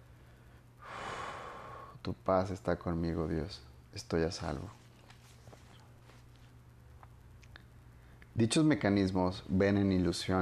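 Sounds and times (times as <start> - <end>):
deep inhale: 0.0 - 2.0
speech: 2.0 - 4.8, 8.4 - 10.3.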